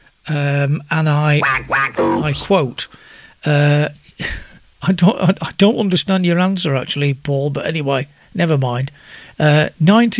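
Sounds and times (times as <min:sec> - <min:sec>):
speech: 0:00.3 - 0:10.1
person imitating a plastic duck with buzzy nasal quacks: 0:01.4 - 0:03.0.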